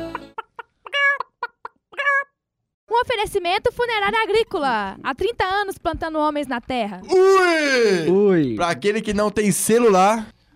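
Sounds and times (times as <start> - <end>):
chicken clucking: 0.0 - 2.4
speech: 3.0 - 10.4.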